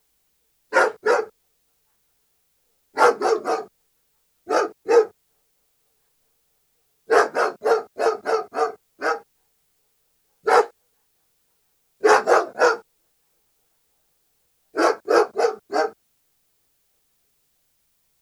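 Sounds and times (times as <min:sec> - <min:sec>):
German Shepherd barking: 0:00.7 - 0:01.3, 0:03.0 - 0:03.7, 0:04.5 - 0:05.2, 0:07.1 - 0:09.3, 0:10.4 - 0:10.8, 0:12.0 - 0:12.9, 0:14.8 - 0:16.0.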